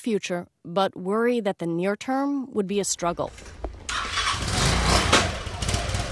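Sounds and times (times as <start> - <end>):
speech: 0.0 - 3.6
motorcycle engine starting in Brazil: 3.2 - 6.0.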